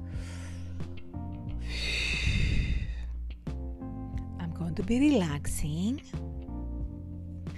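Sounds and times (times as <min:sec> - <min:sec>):
person taking a deep breath: 0:00.0 - 0:01.0, 0:01.6 - 0:03.2
steady low tonal background: 0:00.0 - 0:07.5
person sniffing: 0:01.6 - 0:03.1
speech: 0:04.8 - 0:06.2.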